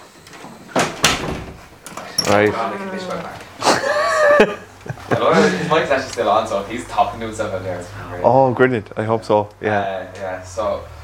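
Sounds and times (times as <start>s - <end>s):
front door opening and shutting: 0.0s - 3.4s
faint room noise: 0.0s - 11.0s
door latch clicking: 0.2s - 2.6s
speech: 2.3s - 3.4s, 4.3s - 11.0s
laughter: 3.4s - 6.2s.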